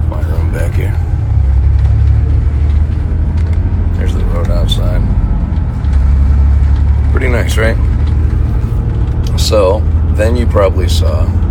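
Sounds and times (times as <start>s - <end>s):
tour bus engine and road noise heard from inside: 0.0s - 11.5s
speech: 9.5s - 11.4s.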